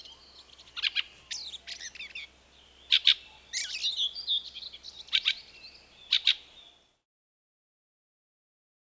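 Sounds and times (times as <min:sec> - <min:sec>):
fieldfare song: 0:00.0 - 0:07.0.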